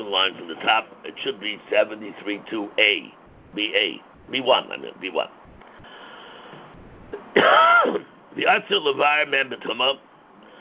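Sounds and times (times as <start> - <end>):
speech: 0.1 - 5.4, 7.4 - 10.0
faint short catch of breath: 5.6 - 6.8
harsh cough or throat clearing: 7.2 - 8.2.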